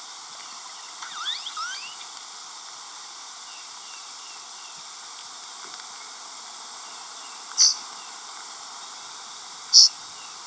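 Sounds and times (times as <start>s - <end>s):
steady background hiss: 0.0s - 10.4s
Blue grosbeak flight calls: 1.0s - 2.0s, 7.5s - 7.8s, 9.7s - 10.0s.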